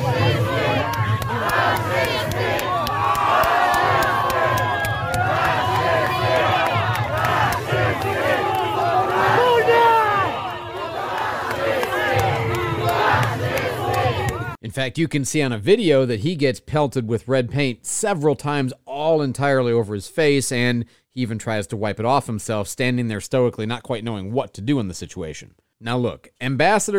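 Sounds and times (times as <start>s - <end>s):
crowd of protesters shouting and yelling: 0.0s - 14.6s
speech: 14.8s - 26.9s.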